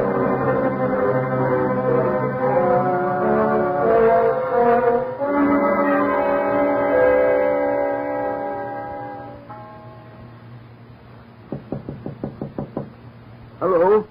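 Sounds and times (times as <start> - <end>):
sustained musical chord: 0.0 - 11.4
firm knocks on a door: 11.5 - 13.0.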